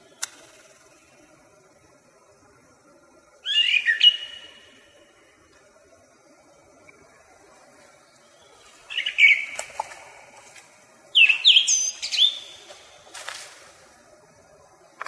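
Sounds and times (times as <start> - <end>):
song thrush short bursts of sharp whistled notes: 3.4 - 5.0, 8.2 - 9.8, 11.1 - 13.1.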